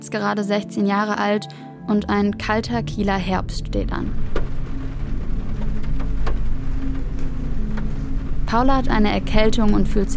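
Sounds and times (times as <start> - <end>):
speech: 0.1 - 4.4, 8.5 - 10.1
low steady car engine rumble and hum: 2.1 - 10.1
rain pattering on the window of a car driven into town in a cold Kiel autumn: 3.0 - 10.1.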